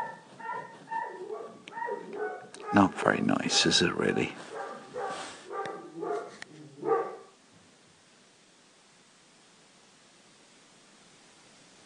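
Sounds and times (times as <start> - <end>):
dog barking: 0.0 - 7.4
speech: 2.7 - 4.5.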